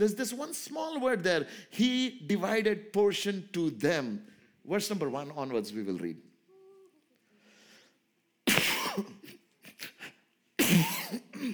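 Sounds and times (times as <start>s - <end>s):
speech: 0.0s - 6.2s, 9.0s - 9.2s
harsh coughing fits with rasping catches and throat noises: 8.5s - 9.8s, 10.6s - 11.5s.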